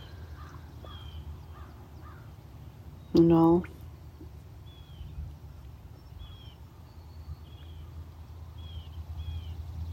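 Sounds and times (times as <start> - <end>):
crows cawing by lake shore: 0.0 - 2.3
faint thin bird chirps: 0.0 - 2.3, 4.6 - 9.9
speech: 3.1 - 3.8.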